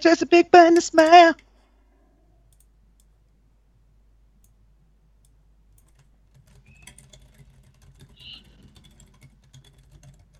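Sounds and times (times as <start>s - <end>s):
speech: 0.0s - 1.4s
low hum: 0.0s - 10.3s
rapid typing on a computer keyboard: 5.7s - 10.3s.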